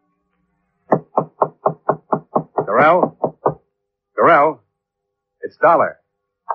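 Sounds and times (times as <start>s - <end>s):
knocking on a hotel room door: 0.9s - 3.6s
speech: 2.8s - 3.2s, 5.5s - 6.0s.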